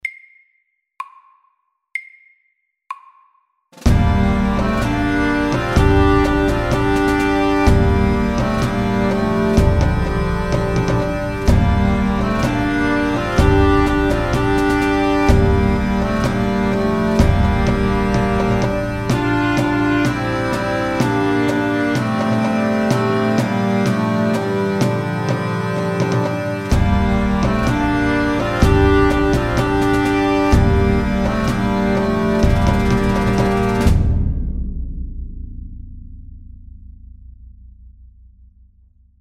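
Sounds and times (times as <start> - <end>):
drums: 3.8 - 37.1
pipes: 3.9 - 34.0.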